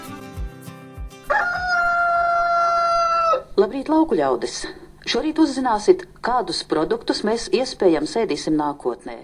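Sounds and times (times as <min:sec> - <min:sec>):
rooster crowing: 0:01.2 - 0:03.5
speech: 0:03.6 - 0:09.2.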